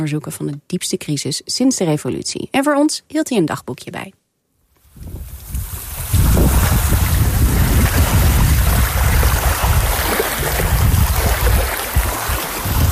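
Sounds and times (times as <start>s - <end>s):
speech: 0.0s - 4.2s
gusts of wind buffeting the microphone: 4.9s - 12.9s
seawater waves at Guantanamo Bay by a naval base fence: 5.0s - 12.9s.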